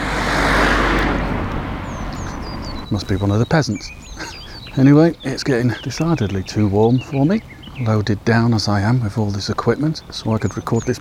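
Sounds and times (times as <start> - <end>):
car driving past on a nearby road: 0.0 - 8.4
laughter: 1.9 - 10.9
speech: 2.9 - 10.9.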